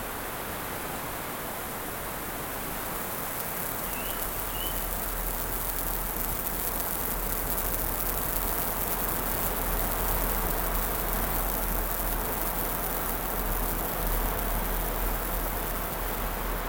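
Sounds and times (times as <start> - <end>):
wind through forest leaves as bad weather approaches: 0.0 - 16.6
faint chirp: 3.2 - 6.9.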